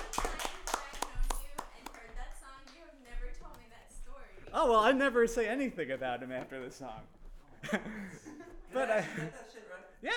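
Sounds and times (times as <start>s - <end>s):
small group applauding after a song: 0.0s - 3.7s
speech: 4.6s - 10.1s
laughter: 7.5s - 10.0s.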